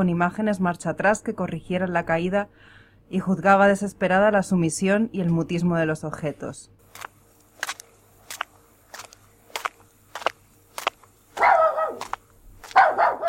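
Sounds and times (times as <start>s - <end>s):
speech: 0.0s - 7.1s
dachshund barking: 11.4s - 13.2s.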